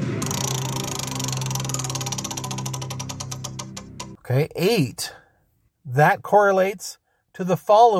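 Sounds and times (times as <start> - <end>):
spinning prize wheel ticking: 0.2 - 4.2
speech: 4.3 - 5.2, 5.9 - 7.9.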